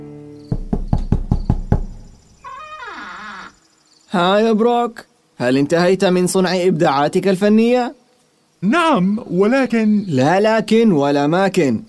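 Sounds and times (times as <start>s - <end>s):
knocking on the wooden door of a workshop: 0.5s - 2.2s
speech: 4.1s - 8.0s, 8.6s - 11.8s.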